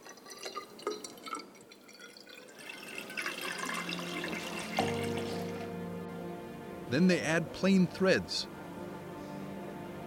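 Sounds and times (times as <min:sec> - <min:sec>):
water pouring into a dye cylinder: 0:00.0 - 0:05.7
speech: 0:06.9 - 0:08.6.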